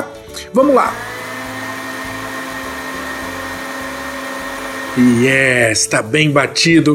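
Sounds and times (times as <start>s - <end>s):
speech: 0.0s - 1.1s, 5.0s - 6.9s
blender churning ingredients with liquid: 0.5s - 5.6s.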